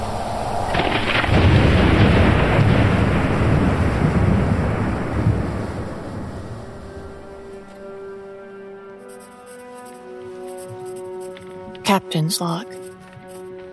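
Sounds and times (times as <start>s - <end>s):
loud thunderclap with deep sustained rumble at sea: 0.0s - 8.1s
rushing wind at sea: 0.0s - 8.4s
speech: 11.9s - 13.0s.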